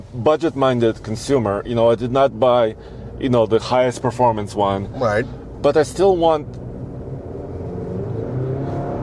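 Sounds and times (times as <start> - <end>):
speech: 0.1 - 6.6
pickup truck engine revving with a low rumble: 6.1 - 9.0.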